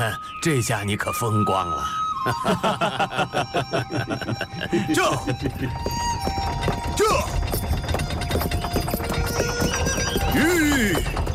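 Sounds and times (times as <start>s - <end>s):
speech: 0.0s - 6.4s
laughter: 2.2s - 5.8s
horse hooves clopping as a horse-drawn carriage approaches: 3.4s - 11.3s
horse-drawn carriage rumbling: 5.0s - 11.3s.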